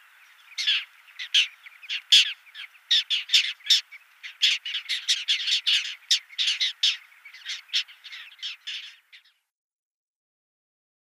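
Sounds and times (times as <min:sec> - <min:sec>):
little gull giving harsh nasal squawks: 0:00.6 - 0:09.0.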